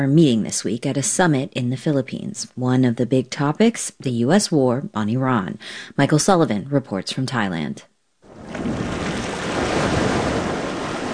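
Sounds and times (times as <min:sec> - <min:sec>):
speech: 0:00.0 - 0:07.9
surf washing onto a beach on the Andaman Sea at Krabi Thailand: 0:08.3 - 0:11.1.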